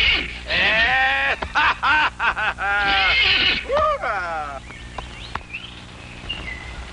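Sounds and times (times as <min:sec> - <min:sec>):
horse neighing: 0:00.0 - 0:01.2, 0:02.7 - 0:04.6
laughter: 0:00.5 - 0:04.6.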